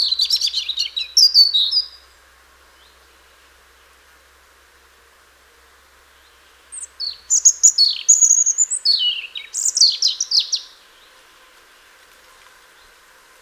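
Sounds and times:
European robin singing: 0.0 - 3.3, 6.1 - 11.2.

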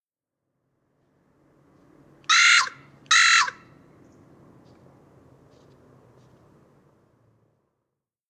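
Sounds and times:
carrion crow Corvus corone harsh raspy caws: 2.3 - 3.8.

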